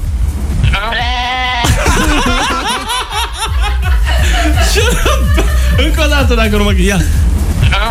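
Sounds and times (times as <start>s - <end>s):
goat bleating: 0.6s - 1.7s
laughter: 1.6s - 6.7s
speech: 4.8s - 7.3s.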